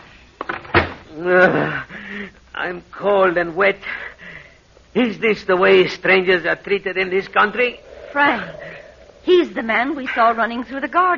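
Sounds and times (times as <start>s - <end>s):
door being pushed shut: 0.5s - 1.0s
speech: 1.1s - 4.1s, 5.0s - 11.1s.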